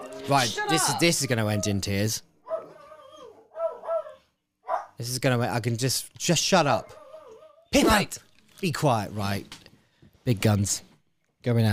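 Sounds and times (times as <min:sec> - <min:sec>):
speech: 0:00.2 - 0:02.3, 0:05.0 - 0:07.0, 0:07.7 - 0:09.6, 0:10.3 - 0:11.7
dog barking: 0:02.4 - 0:05.0
dog whining in a high-pitched tone: 0:02.5 - 0:04.9, 0:06.8 - 0:07.8.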